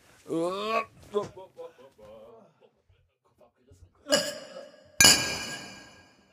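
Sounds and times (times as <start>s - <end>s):
glasses clinking in a toast: 4.1s - 6.2s.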